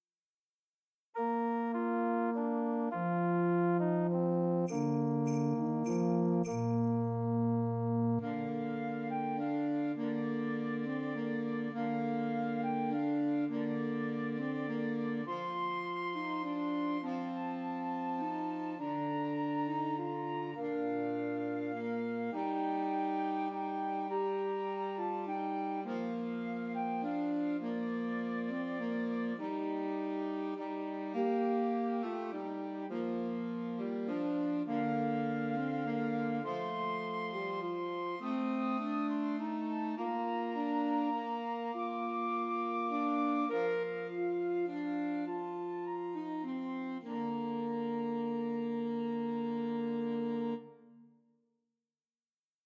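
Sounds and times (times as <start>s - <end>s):
alto saxophone: 1.2s - 51.1s
flute: 1.2s - 51.2s.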